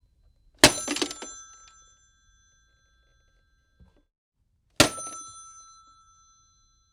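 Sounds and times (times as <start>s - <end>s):
phone impact down: 0.6s - 1.4s, 4.8s - 5.5s.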